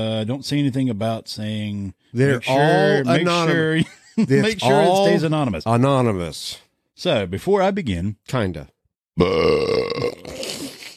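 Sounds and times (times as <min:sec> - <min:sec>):
speech: 0:00.0 - 0:10.3
long loud belch: 0:09.2 - 0:10.6.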